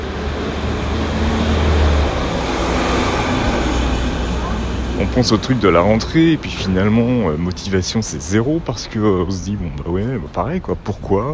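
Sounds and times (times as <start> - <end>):
heavy truck driving past: 0.0 - 8.6
speech: 5.2 - 11.3.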